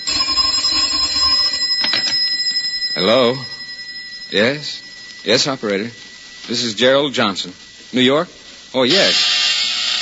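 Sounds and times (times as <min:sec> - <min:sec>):
telephone ringing with a bright metallic bell tone: 0:00.0 - 0:07.0
speech: 0:03.0 - 0:03.5, 0:04.3 - 0:09.4.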